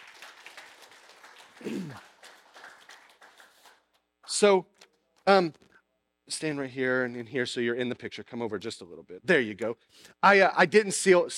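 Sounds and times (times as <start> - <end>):
audience applause: 0.0 - 3.9
speech: 1.6 - 2.1, 4.4 - 4.7, 5.3 - 5.6, 6.3 - 11.3.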